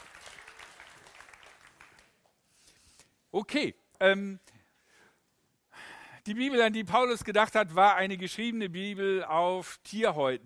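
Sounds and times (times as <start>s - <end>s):
audience of many hands clapping in a room: 0.0s - 2.4s
speech: 3.3s - 4.5s, 6.3s - 10.4s.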